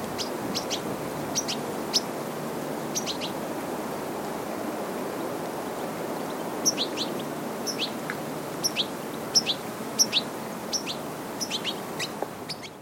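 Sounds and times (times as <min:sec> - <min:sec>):
constant hiss: 0:00.0 - 0:12.8
European goldfinch Carduelis carduelis calling in tinkling clusters: 0:00.2 - 0:02.1, 0:02.9 - 0:03.4, 0:06.6 - 0:08.0, 0:08.6 - 0:12.8.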